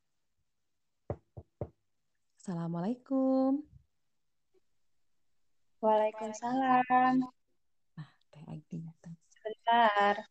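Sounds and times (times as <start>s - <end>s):
firm knocks on a wooden front door: 1.1s - 1.8s
speech: 2.4s - 3.7s, 5.8s - 7.4s, 9.7s - 10.2s.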